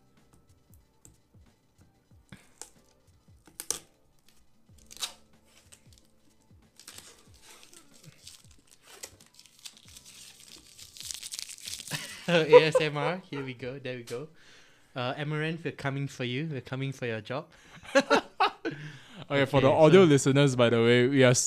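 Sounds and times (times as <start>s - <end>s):
plastic product packaging crinkling and ripping as it is torn open: 3.5s - 6.1s, 6.7s - 12.2s
laughter: 11.9s - 13.6s, 17.8s - 19.8s
speech: 12.3s - 21.4s.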